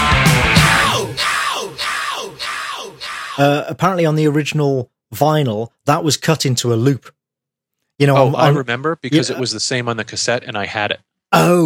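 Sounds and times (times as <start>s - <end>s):
person yelling: 0.7s - 3.7s, 8.2s - 8.6s
speech: 3.4s - 7.2s, 8.0s - 11.6s.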